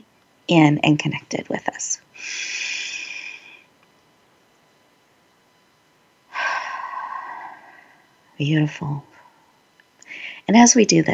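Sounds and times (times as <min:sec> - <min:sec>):
speech: 0:00.5 - 0:02.7, 0:08.4 - 0:09.1, 0:10.5 - 0:11.1
long breathy exhale: 0:02.2 - 0:03.6, 0:06.3 - 0:08.0
deep airy inhale: 0:02.2 - 0:03.7, 0:06.3 - 0:08.1, 0:09.2 - 0:10.5.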